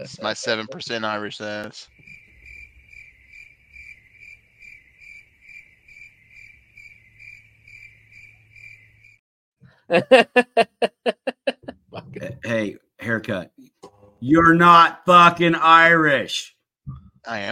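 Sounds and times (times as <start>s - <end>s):
speech: 0.0s - 2.0s, 9.9s - 11.2s, 12.4s - 13.6s, 14.2s - 16.6s, 17.2s - 17.5s
crickets chirping: 1.9s - 9.2s
loud pulsing laughter: 9.9s - 11.8s.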